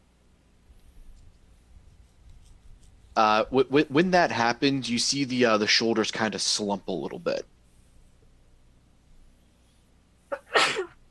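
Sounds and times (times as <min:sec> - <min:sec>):
speech: 0:03.2 - 0:07.5
person sneezing: 0:10.3 - 0:11.0.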